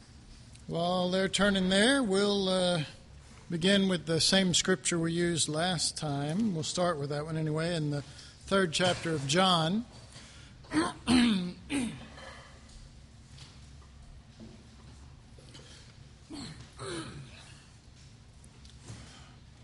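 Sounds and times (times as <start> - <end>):
speech: 0.7 - 10.0, 10.7 - 12.0
man coughing: 10.7 - 12.2, 16.3 - 17.6
man clearing his throat: 10.7 - 12.3, 16.3 - 17.6.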